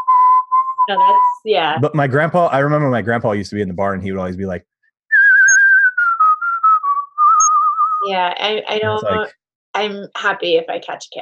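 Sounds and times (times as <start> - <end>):
person whistling with lips: 0.0 - 1.4, 5.1 - 8.0
speech: 0.9 - 4.7, 8.0 - 11.2.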